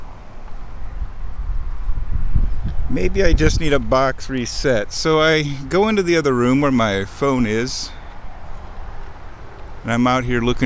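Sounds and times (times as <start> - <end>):
wind blowing outdoors: 0.0 - 10.6
speech: 2.9 - 8.0, 9.8 - 10.6.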